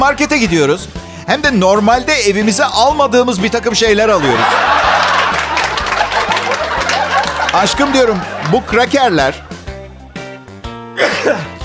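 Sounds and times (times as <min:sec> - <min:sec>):
speech: 0:00.0 - 0:04.9, 0:07.6 - 0:09.6, 0:11.0 - 0:11.5
laughter: 0:04.0 - 0:09.6
loud sneeze: 0:11.0 - 0:11.6.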